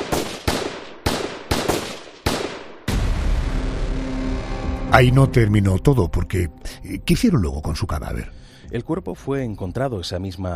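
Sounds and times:
sharp loud gunshots with tails: 0.0s - 3.6s
sustained rumbling burst of noise: 2.9s - 4.9s
speech: 4.9s - 10.5s.

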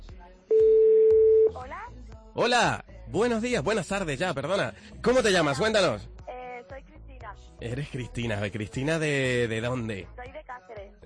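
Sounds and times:
telephone connecting tone as a caller is put through: 0.5s - 1.6s
speech: 2.4s - 6.2s, 7.6s - 10.4s.

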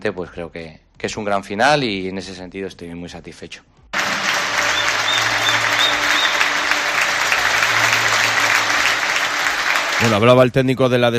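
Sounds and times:
speech: 0.0s - 3.8s, 10.0s - 11.1s
large stadium crowd clapping and cheering: 3.9s - 10.6s
faint whistles from stadium crowd: 4.7s - 6.7s.

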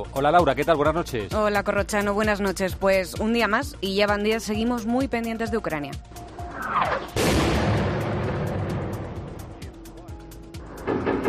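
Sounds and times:
speech: 0.0s - 7.4s
heavy blast of gunfire: 6.8s - 9.7s.

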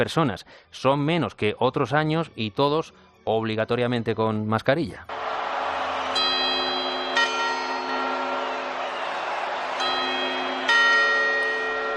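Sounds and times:
speech: 0.0s - 5.5s
Puerta del Sol clock tower bell chiming in Madrid: 6.1s - 11.9s.

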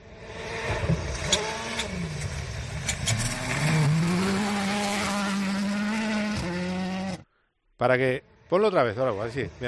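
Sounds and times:
Citroën C3 rally car engine screaming on gravel in Almería: 0.1s - 7.2s
speech: 7.8s - 9.6s.

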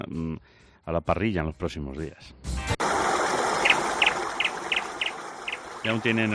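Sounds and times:
speech: 0.0s - 2.6s, 5.8s - 6.3s
small bird chirping: 3.6s - 6.0s.

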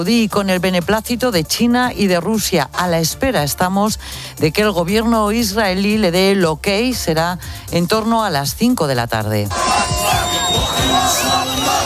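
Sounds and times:
speech: 0.0s - 10.0s
crowd of thousands cheering and celebrating: 9.5s - 11.8s.

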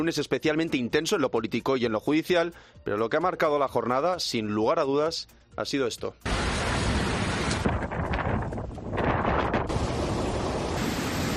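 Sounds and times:
speech: 0.0s - 6.6s
heavy rain in a storm: 6.3s - 7.7s, 9.7s - 11.3s
gusting wind blasting across the microphone: 6.3s - 11.3s.

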